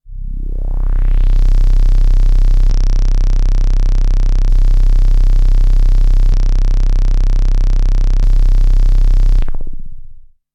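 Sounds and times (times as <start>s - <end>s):
synthesizer filter sweeps: 0.0s - 10.3s.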